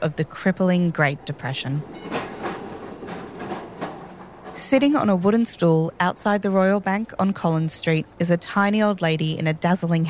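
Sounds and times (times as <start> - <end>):
speech: 0.0 - 2.2, 4.6 - 10.0
tram wheels clattering over rail joints: 0.0 - 7.5
tram rattling along tracks on a cold overcast morning: 0.0 - 9.8.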